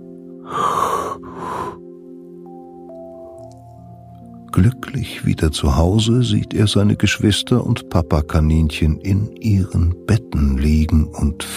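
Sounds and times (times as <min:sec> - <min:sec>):
faint steady tone: 0:00.0 - 0:11.5
person yawning: 0:00.4 - 0:01.8
speech: 0:04.6 - 0:11.5.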